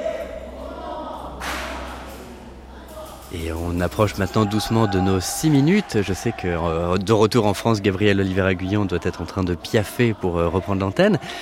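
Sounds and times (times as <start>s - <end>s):
faint murmur of voices: 0.0s - 11.4s
hand clap in a monks' debate: 1.4s - 2.3s
speech: 3.3s - 11.4s.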